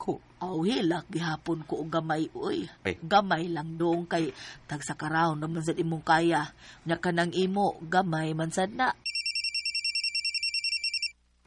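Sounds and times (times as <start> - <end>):
speech: 0.0 - 9.0
mobile phone ringtone ringing: 9.0 - 11.2.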